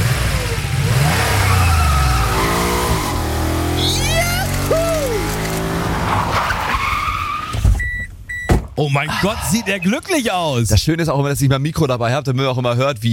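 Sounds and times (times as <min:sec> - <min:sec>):
car engine accelerating past a speed camera on a 50 km/h street in Schleswig: 0:00.0 - 0:06.3
tyre and road noise: 0:00.0 - 0:10.1
driver speaking a brief phrase: 0:02.2 - 0:05.8, 0:08.7 - 0:13.1
speech: 0:08.8 - 0:13.1.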